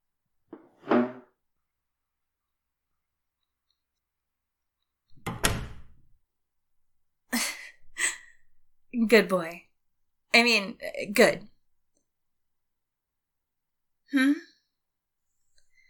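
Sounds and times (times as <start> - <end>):
knock: 0.6 - 1.2
door shutting with a solid thud: 5.2 - 6.0
speech: 9.0 - 9.6, 10.3 - 11.5, 14.1 - 14.5.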